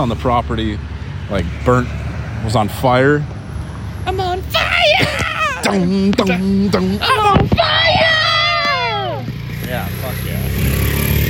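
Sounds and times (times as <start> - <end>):
speech: 0.0 - 3.4, 4.0 - 7.8
motorcycle passing by outside: 1.2 - 4.5, 5.7 - 11.2.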